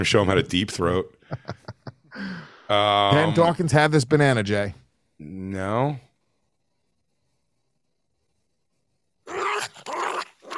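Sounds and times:
speech: 0:00.0 - 0:01.5, 0:02.7 - 0:06.1
dog growling: 0:09.3 - 0:10.5.

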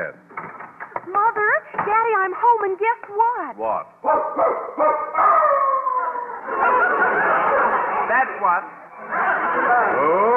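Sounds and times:
speech: 0:01.2 - 0:05.0, 0:08.1 - 0:10.3
dog howling and yipping: 0:04.4 - 0:06.4
laughter: 0:06.0 - 0:10.3.

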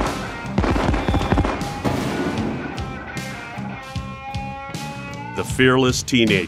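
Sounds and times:
firework rocket bursting high in the air: 0:00.0 - 0:02.8
speech: 0:05.4 - 0:06.4.

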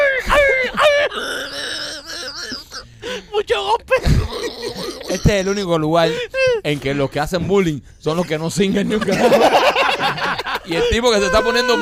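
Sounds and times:
laughter: 0:00.0 - 0:02.9, 0:03.9 - 0:05.7, 0:08.1 - 0:11.8
person imitating a dog yelping and whimpering: 0:00.0 - 0:02.9, 0:03.5 - 0:05.4
speech: 0:05.2 - 0:11.8.

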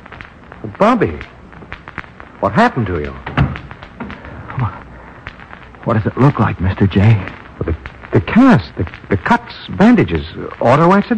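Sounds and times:
speech: 0:00.7 - 0:01.4, 0:02.4 - 0:03.3, 0:05.9 - 0:11.1
door handle and latch taps and rattles: 0:03.2 - 0:04.1.

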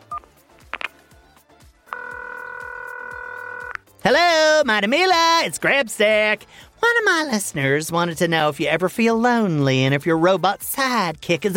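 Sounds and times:
dialing tones: 0:01.9 - 0:03.8
keypad beep: 0:01.9 - 0:03.8
speech: 0:04.0 - 0:11.5.

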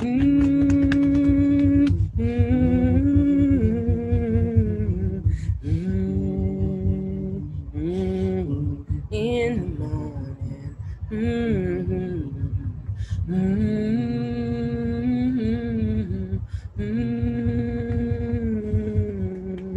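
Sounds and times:
soft fingertip taps on EFT tapping points on the body: 0:00.0 - 0:02.0
low pulsing throb: 0:00.0 - 0:19.7
person humming between sustained pitches: 0:00.0 - 0:19.7.

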